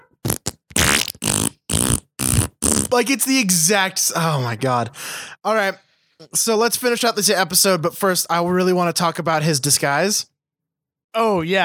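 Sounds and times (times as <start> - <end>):
fart sound effect from a soundboard: 0.2 - 3.0
speech: 2.9 - 10.3, 11.1 - 11.6.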